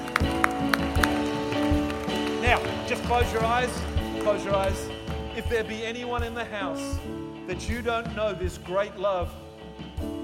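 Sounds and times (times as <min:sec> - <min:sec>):
audience clapping hands in a steady rhythm: 0:00.0 - 0:06.4
sustained organ-like music: 0:00.0 - 0:10.2
speech: 0:02.5 - 0:09.4.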